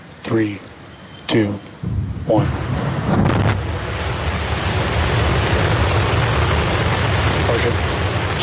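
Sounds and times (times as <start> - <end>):
speech: 0.3 - 0.7, 1.3 - 1.7, 2.3 - 3.3, 7.6 - 8.4
Starship Super Heavy booster engines roaring at launch: 1.7 - 8.4.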